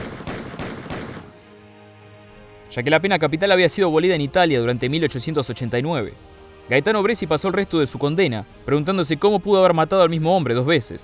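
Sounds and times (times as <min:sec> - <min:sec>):
revolver gunshots: 0:00.0 - 0:01.4
speech: 0:02.7 - 0:11.0.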